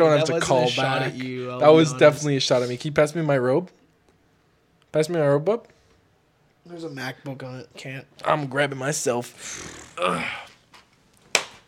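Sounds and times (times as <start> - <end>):
speech: 0.0 - 3.8, 4.9 - 5.7, 6.6 - 10.5
short vocal exclamation: 9.4 - 10.5
hand slapping someone's buttocks: 10.7 - 11.6.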